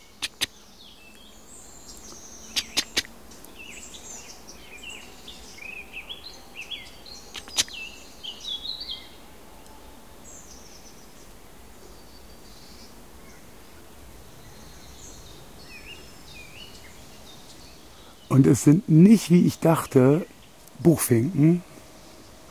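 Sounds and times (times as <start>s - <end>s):
squirrel giving soft high chirping calls: 0.0s - 0.5s, 2.0s - 3.1s, 7.2s - 7.9s
sharp clicks: 0.2s - 0.5s, 2.6s - 3.1s, 7.4s - 7.7s
speech: 18.4s - 21.7s.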